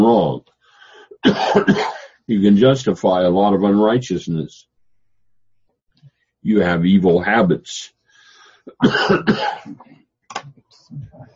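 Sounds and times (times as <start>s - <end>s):
speech: 0.0s - 0.5s, 1.2s - 4.7s, 6.4s - 8.0s, 8.6s - 11.3s
man coughing: 1.2s - 2.2s, 8.7s - 9.8s.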